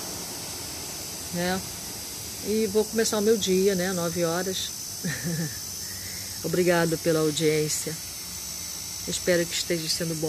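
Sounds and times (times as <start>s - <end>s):
train passing: 0.0s - 4.5s
speech: 1.3s - 1.8s, 2.4s - 5.6s, 6.4s - 8.1s, 9.0s - 10.2s
laughter: 5.0s - 6.1s.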